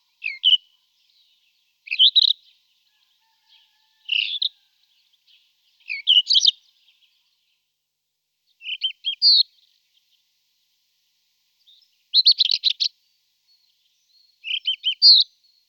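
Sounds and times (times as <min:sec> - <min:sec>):
Rufous-tailed scrub robin Cercotrichas galactotes singing whistles and scratchy trills: 0:00.0 - 0:02.8, 0:04.1 - 0:07.3, 0:08.5 - 0:10.2, 0:11.6 - 0:15.6.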